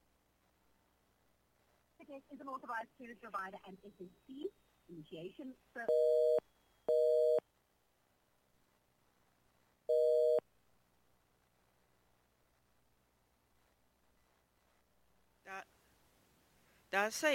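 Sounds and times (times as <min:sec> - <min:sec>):
speech: 0:02.1 - 0:06.4, 0:16.9 - 0:17.3
telephone busy signal: 0:05.9 - 0:07.4, 0:09.9 - 0:10.4.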